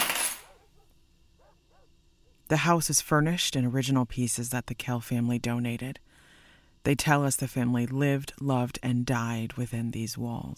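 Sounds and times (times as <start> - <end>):
keys on wooden dowel dropping into glass vase: 0.0 - 0.6
speech: 2.5 - 6.1, 6.8 - 10.5.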